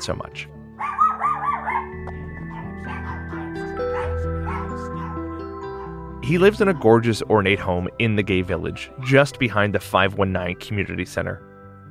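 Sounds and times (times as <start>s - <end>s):
speech: 0.0s - 0.6s, 6.3s - 11.5s
steady low tonal background: 0.5s - 11.8s
several dogs barking and yipping: 0.8s - 6.2s.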